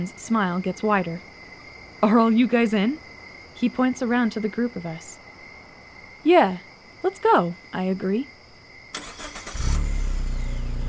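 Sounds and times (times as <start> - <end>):
speech: 0.0 - 1.3, 2.0 - 5.2, 6.2 - 8.4
car engine cranking and starting: 9.0 - 10.8.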